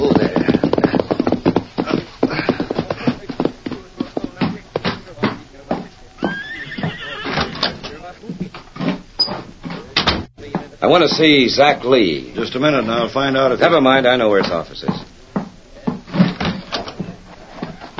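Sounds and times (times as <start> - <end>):
horse hooves clip-clopping as rider reins up: 0.0 - 17.9
horse neighing: 6.2 - 8.2
speech: 10.9 - 15.1.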